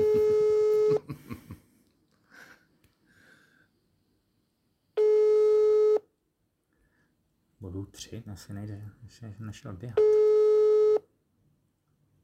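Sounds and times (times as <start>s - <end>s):
phone ringback tone during a call: 0.0s - 1.0s, 5.0s - 6.0s, 10.0s - 11.0s
breaths: 1.6s - 3.9s, 6.7s - 7.2s
speech: 7.9s - 10.3s.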